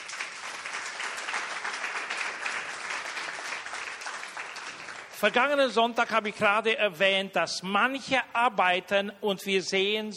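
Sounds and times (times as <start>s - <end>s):
crowd applauding: 0.0s - 5.6s
speech: 5.2s - 10.1s.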